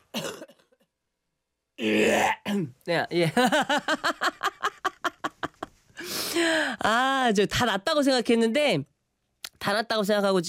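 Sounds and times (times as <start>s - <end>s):
harsh cough with rasps: 0.0s - 0.7s, 1.8s - 2.8s
speech: 1.8s - 4.2s, 6.5s - 8.9s, 9.6s - 10.4s
laughter: 3.2s - 5.7s.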